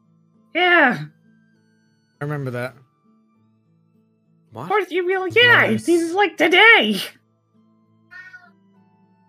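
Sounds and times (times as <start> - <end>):
speech: 0.5 - 1.2, 2.2 - 2.8, 4.5 - 7.2
cat meowing: 8.1 - 8.6.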